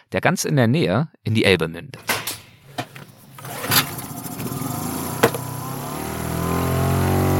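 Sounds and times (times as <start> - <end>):
speech: 0.1 - 2.1
10 hp outboard motor on a small raft on a river near the Elbe: 2.9 - 7.3
sharp knocks: 5.2 - 5.5.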